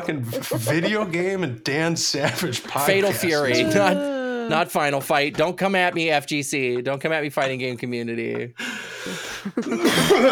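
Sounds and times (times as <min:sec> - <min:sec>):
laughter: 0:00.0 - 0:01.4, 0:02.0 - 0:04.6, 0:09.1 - 0:10.2
speech: 0:00.0 - 0:10.2
cough rolling into a throaty burp: 0:09.6 - 0:10.2.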